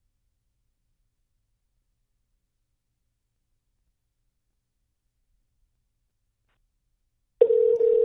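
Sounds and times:
telephone dial tone: 7.4 - 8.0.

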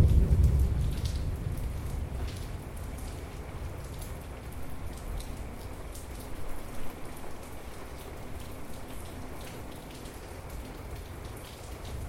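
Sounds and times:
deep low thunder rumble: 0.0 - 4.8
steady rain in a thunderstorm: 0.0 - 12.0.

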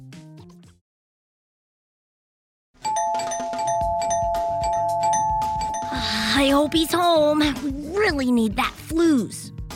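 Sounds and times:
brief chime: 2.9 - 7.2
doorbell ringing at the gates of a candy factory: 2.9 - 7.2
speech: 6.4 - 9.6.

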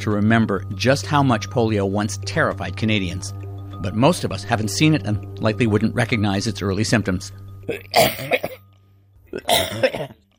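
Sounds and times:
speech: 0.0 - 8.5, 9.4 - 10.2
person coughing harshly: 7.7 - 8.6, 9.3 - 10.2.

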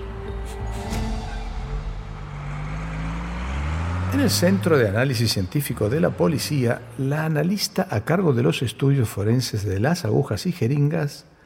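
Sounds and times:
bus engine drone accelerating: 0.0 - 8.5
speech: 4.1 - 11.3.

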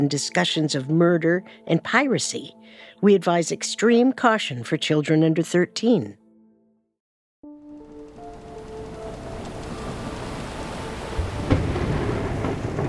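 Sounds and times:
speech: 0.0 - 6.2
heavy rain in a thunderstorm: 7.8 - 12.8
low rolling thunder: 8.3 - 12.8.

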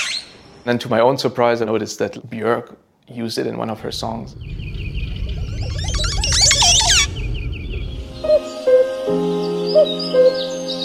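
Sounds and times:
speech: 0.6 - 4.7, 9.8 - 10.5
oropendola song: 3.8 - 10.8.

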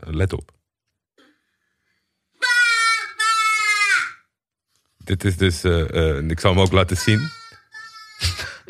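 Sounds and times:
speech: 0.1 - 0.6, 5.1 - 7.4
toddler yelling at full volume: 2.4 - 4.3, 7.0 - 8.4.

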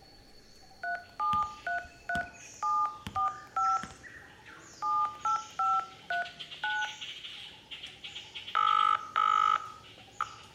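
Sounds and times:
cell phone keypad dual-tone dialing beeps: 0.8 - 3.9, 4.8 - 6.9, 8.6 - 9.7.

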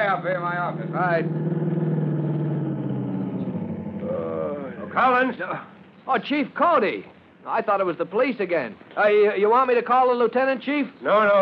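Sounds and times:
car engine idling: 0.0 - 6.6
speech: 0.1 - 1.9, 5.0 - 11.4.

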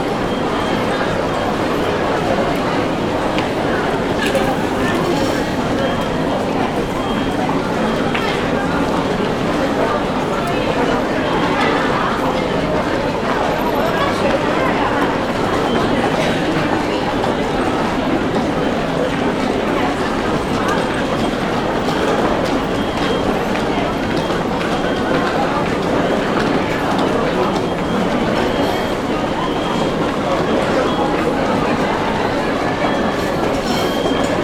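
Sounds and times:
overlapping voices and crowd murmur in a metro station: 0.0 - 34.4.

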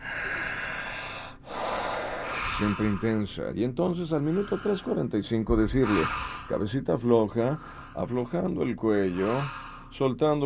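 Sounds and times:
heavy breathing: 0.0 - 10.0
speech: 2.6 - 10.4.

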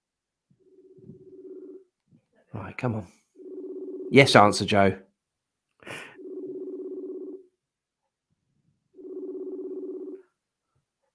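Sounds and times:
Messenger call ringing tone: 0.5 - 2.0, 3.0 - 5.0, 5.9 - 7.6, 8.9 - 10.4
speech: 2.6 - 3.2, 4.1 - 5.1.

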